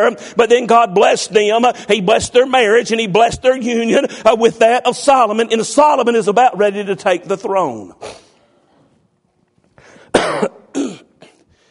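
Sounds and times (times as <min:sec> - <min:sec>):
speech: 0:00.0 - 0:08.2
person coughing harshly: 0:10.0 - 0:11.5.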